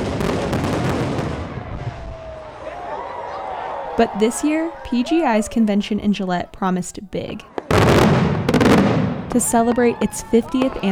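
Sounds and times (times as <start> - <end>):
fireworks booming and crackling: 0.0 - 2.6, 7.5 - 10.9
speech: 4.0 - 7.5, 9.3 - 10.9.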